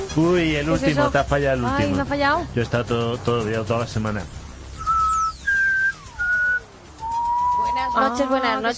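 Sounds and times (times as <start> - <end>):
speech: 0.1 - 4.4, 8.0 - 8.7
person whistling a short tune: 4.8 - 8.1.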